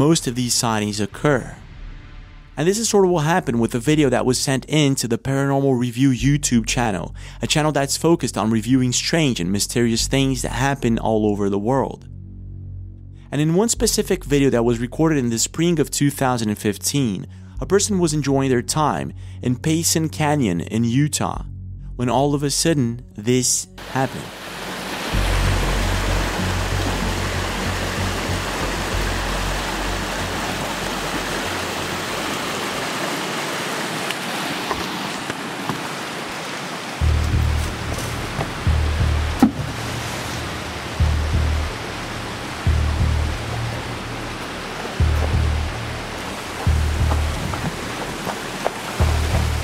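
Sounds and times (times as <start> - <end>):
speech: 0.0 - 1.6, 2.6 - 12.1, 13.3 - 25.3
rushing river water in a canyon: 23.8 - 49.6
low rumbling thumps: 25.1 - 31.6, 37.0 - 49.6.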